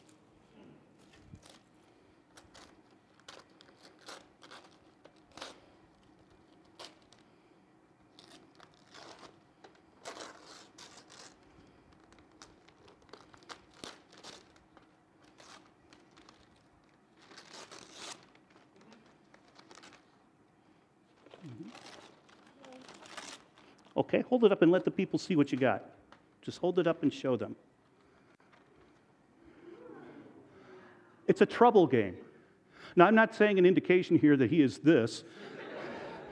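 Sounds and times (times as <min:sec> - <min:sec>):
gift wrapping paper crinkling and tearing as a gift is opened: 0:01.0 - 0:07.4, 0:08.1 - 0:20.2, 0:21.1 - 0:24.0
speech: 0:24.0 - 0:27.7, 0:31.4 - 0:32.3, 0:33.0 - 0:35.5
laughter: 0:35.3 - 0:36.3.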